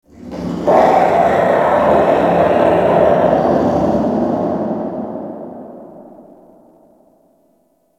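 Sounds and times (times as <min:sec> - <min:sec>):
infested distant creature snarl: 0:00.0 - 0:06.7.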